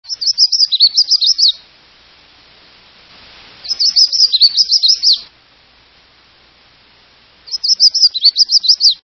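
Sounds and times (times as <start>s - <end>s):
Red-faced Warbler singing: 0.0s - 1.8s, 3.6s - 5.3s, 7.4s - 9.0s.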